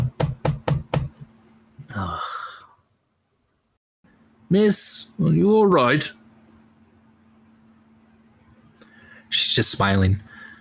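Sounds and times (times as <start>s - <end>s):
quick sharp knocks on a door: 0.0s - 1.3s
speech: 2.0s - 2.4s, 4.5s - 6.2s, 9.3s - 10.3s.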